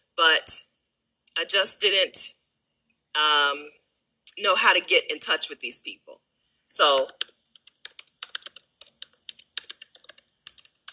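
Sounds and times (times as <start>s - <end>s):
speech: 0.2s - 0.7s, 1.4s - 2.4s, 3.1s - 3.8s, 4.4s - 7.2s
rapid irregular typing on a computer keyboard: 6.9s - 10.9s.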